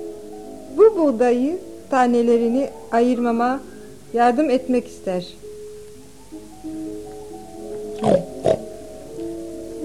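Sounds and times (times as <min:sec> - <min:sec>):
faint steady tonal background: 0:00.0 - 0:09.8
speech: 0:01.0 - 0:05.4
pig oinking: 0:08.0 - 0:08.7.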